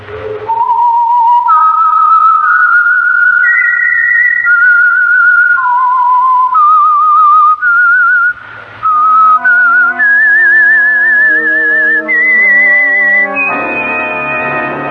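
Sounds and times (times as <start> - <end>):
lone clear whistled radio theme melody: 0.0 - 14.8
orchestra playing: 8.9 - 14.8.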